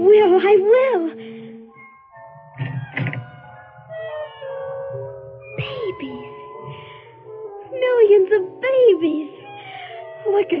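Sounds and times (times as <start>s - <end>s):
speech: 0.4s - 1.3s, 8.3s - 9.3s, 10.3s - 10.5s
door swinging open with a clunk and rattle: 2.5s - 3.5s.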